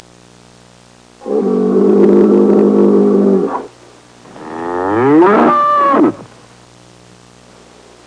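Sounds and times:
bull bellowing and mooing: 1.2 - 3.7, 4.3 - 6.3.

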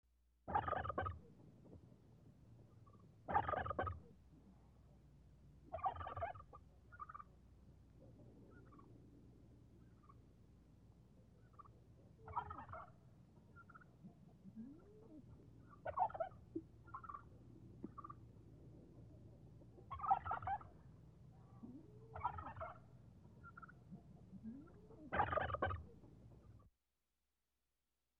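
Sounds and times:
fowl clucking: 0.5 - 1.2, 3.3 - 4.1, 5.7 - 7.3, 11.5 - 17.3, 17.9 - 18.2, 19.8 - 20.8, 21.6 - 26.0.

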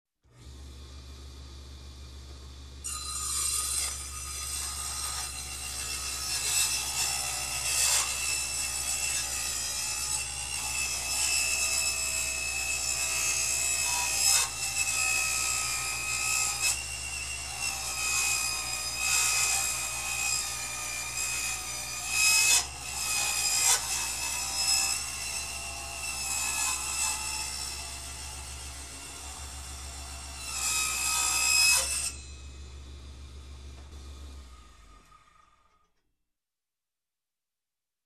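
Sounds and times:
electric cutter cutting metal: 2.8 - 35.8.

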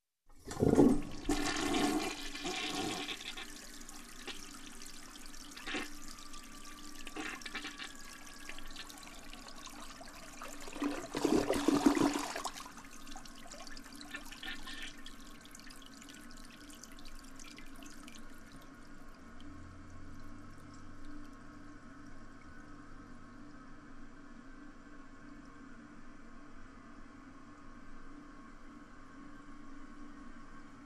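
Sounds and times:
clogged toilet flushing: 0.3 - 19.1.

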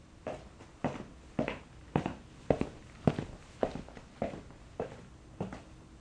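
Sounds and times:
footsteps in a room: 0.3 - 5.7.

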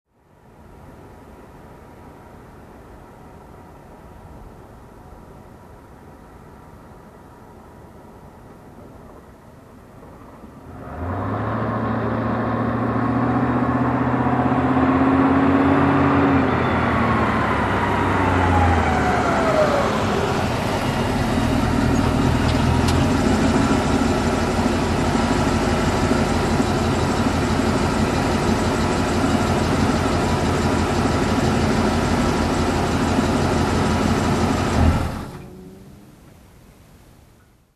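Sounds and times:
truck approaching and parking: 6.5 - 36.5.

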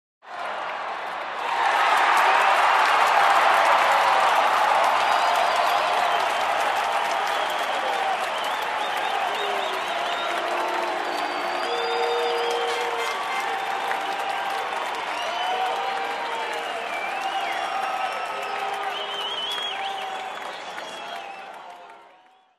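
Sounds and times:
crowd cheering: 0.2 - 22.5.

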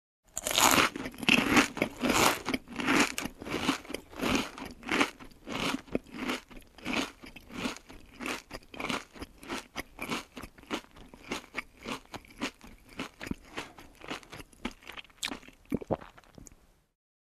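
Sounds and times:
biting and chewing food: 0.3 - 16.6
person gulping: 13.2 - 16.6.

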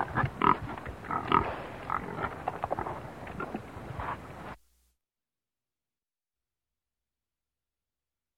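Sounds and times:
several hogs grunting: 0.0 - 4.2.

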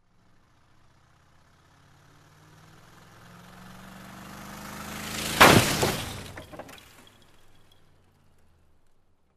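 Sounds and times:
motorcycle crash: 5.0 - 7.8.

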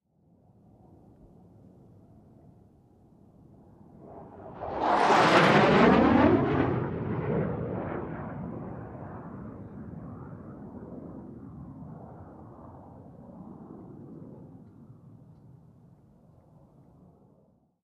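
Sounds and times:
aircraft on a runway taking off: 3.2 - 17.4.

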